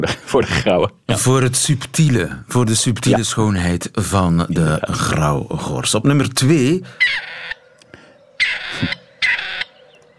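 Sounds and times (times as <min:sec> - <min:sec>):
speech: 0:00.0 - 0:07.3
grey partridge giving harsh rasping calls: 0:06.9 - 0:10.1.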